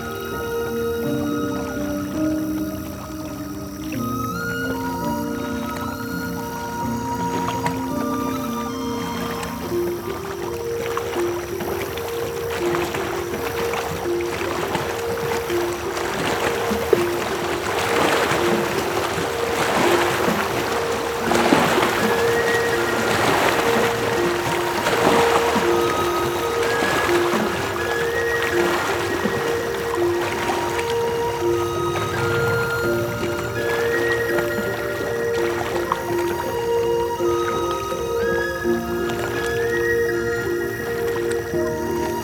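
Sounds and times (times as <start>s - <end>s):
gentle splashing at a lake at night: 0.0s - 42.2s.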